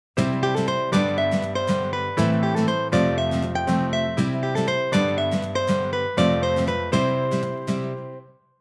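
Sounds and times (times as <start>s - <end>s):
short cheerful opening melody: 0.2s - 8.5s.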